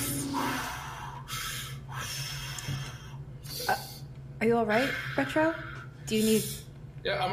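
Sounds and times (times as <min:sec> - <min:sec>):
voice imitating a robot breathing deeply through vents: 0:00.0 - 0:04.0
steady low hum: 0:00.0 - 0:07.3
speech: 0:04.4 - 0:07.3.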